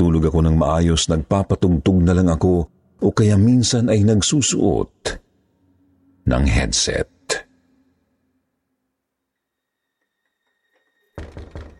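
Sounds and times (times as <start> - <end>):
speech: 0.0 - 5.2, 6.2 - 7.4
knocking on a door: 11.2 - 11.7.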